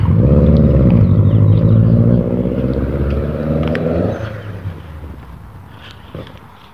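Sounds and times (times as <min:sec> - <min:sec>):
car engine rumbling and shifting gears while driving around a neighborhood: 0:00.0 - 0:06.7.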